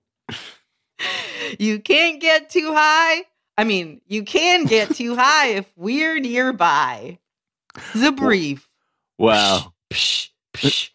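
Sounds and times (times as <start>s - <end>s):
speech: 1.5s - 10.9s
laughter: 4.4s - 5.3s
voice imitating an aerosol air freshener being sprayed: 9.4s - 10.9s.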